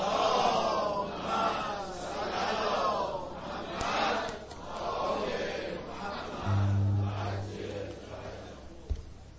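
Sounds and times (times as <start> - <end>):
large audience loudly chanting a salawat in unison: 0.0 - 6.4
low steady hum: 6.5 - 8.4.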